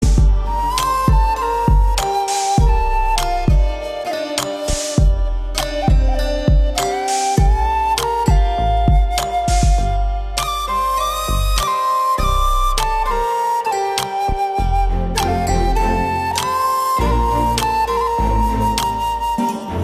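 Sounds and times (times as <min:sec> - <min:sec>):
flute ringtone: 0:00.0 - 0:19.8.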